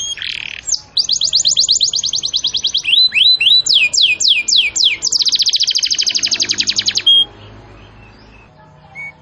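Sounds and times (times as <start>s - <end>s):
domestic canary singing in cengkok song style: 0.0s - 9.2s.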